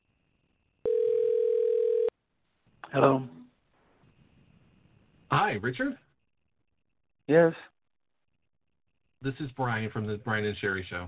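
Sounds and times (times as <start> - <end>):
telephone dial tone while placing a call: 0.8 - 2.1
speech: 2.9 - 3.4, 5.3 - 6.0, 7.3 - 7.7, 9.2 - 11.0.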